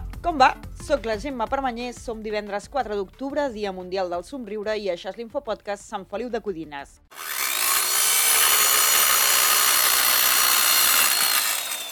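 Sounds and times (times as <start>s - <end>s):
speech: 0.2s - 7.3s
sawing of wood in construction work: 7.1s - 11.9s.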